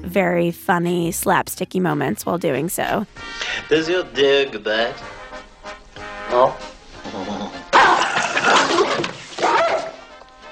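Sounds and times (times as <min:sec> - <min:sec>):
speech: 0:00.0 - 0:05.2, 0:06.3 - 0:06.7
dog snarling and barking aggressively: 0:07.2 - 0:10.1
scuffling commotion: 0:07.8 - 0:10.4.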